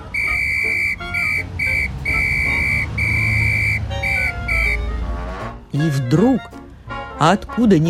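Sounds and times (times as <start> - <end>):
police whistle blown loudly by police officer: 0.0 - 4.9
speech: 5.7 - 6.5, 7.2 - 7.8.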